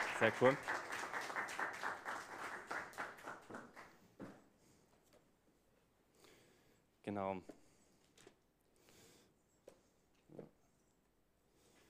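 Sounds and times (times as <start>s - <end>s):
group applauding: 0.0s - 4.0s
speech: 0.2s - 0.9s, 7.1s - 7.6s.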